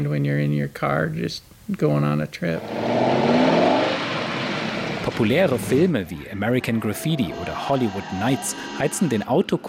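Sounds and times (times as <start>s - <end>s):
speech: 0.0s - 3.4s, 5.2s - 9.6s
car engine revving as the vehicle pulls away and accelerates: 2.6s - 9.6s.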